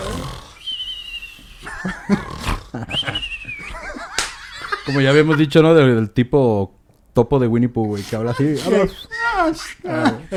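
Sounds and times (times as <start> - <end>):
person imitating snoring with mouth closed and whistling: 0.0 - 3.7
laughing breaths: 0.0 - 5.0, 7.8 - 10.3
speech: 1.8 - 2.4, 4.9 - 10.3.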